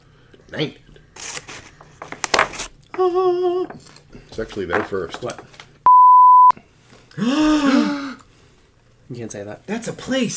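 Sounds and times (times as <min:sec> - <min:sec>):
speech: 0:00.5 - 0:00.9, 0:03.0 - 0:05.5, 0:07.2 - 0:07.9, 0:09.1 - 0:10.3
censor bleep: 0:05.9 - 0:06.6.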